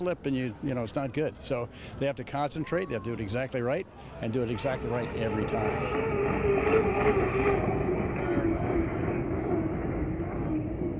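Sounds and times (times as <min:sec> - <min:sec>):
speech: 0:00.0 - 0:07.4
hydroplane racing boat engine roaring across water: 0:04.3 - 0:10.9.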